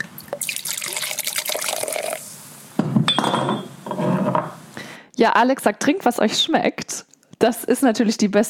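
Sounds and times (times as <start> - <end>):
pét-nat wine pouring: 0.0 - 2.4
glasses clinking in a toast: 3.1 - 4.0
speech: 5.2 - 8.4.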